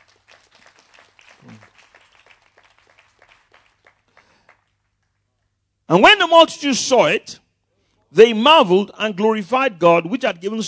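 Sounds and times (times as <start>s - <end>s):
church audience clapping in sustained applause: 0.0s - 5.5s
speech: 5.9s - 7.4s, 8.2s - 10.6s.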